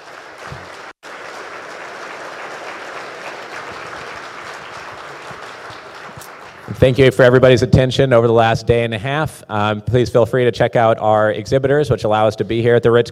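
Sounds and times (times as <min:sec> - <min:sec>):
large audience applause: 0:00.0 - 0:07.4
speech: 0:06.8 - 0:13.1.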